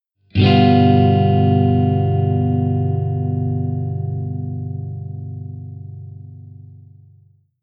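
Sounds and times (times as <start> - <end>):
G7 tetrad chord: 0.4 - 6.3.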